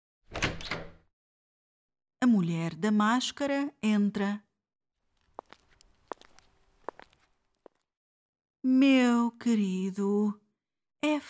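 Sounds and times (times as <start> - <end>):
door creaking and scraping open: 0.3 - 1.0
speech: 2.2 - 4.5, 8.6 - 10.4, 11.0 - 11.2.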